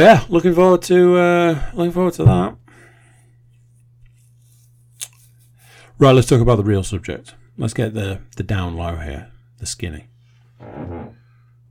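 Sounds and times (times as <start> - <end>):
speech: 0.0 - 2.6, 6.0 - 11.2
steady low electrical hum: 0.0 - 11.7
chair shifting with creak and rustle: 10.6 - 11.2.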